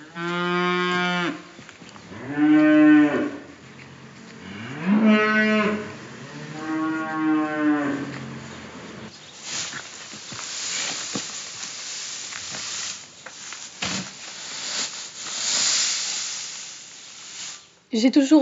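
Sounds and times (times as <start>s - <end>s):
speech: 0.2s - 0.4s, 18.0s - 18.4s
cows mooing on a farm in the Normandy countryside: 2.1s - 8.7s.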